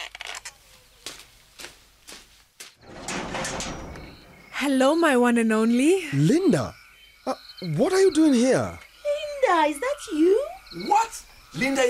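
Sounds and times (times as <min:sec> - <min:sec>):
door latch and handle clicks and rattles: 0:02.8 - 0:04.5
speech: 0:04.6 - 0:08.8, 0:09.5 - 0:11.8.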